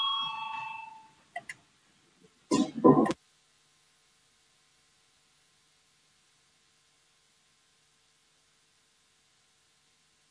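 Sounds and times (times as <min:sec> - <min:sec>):
electric parliamentary voting bell ringing to start a vote: 0:00.0 - 0:01.1.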